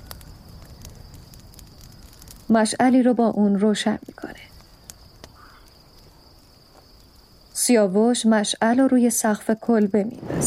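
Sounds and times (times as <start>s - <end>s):
outdoor campfire outside a cabin crackling: 0.0s - 10.4s
speech: 2.5s - 4.5s, 7.7s - 10.4s.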